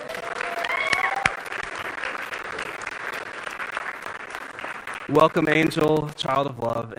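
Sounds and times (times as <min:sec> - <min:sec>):
cheering: 0:00.0 - 0:03.7
crowd applauding: 0:00.0 - 0:06.8
speech: 0:05.1 - 0:06.9.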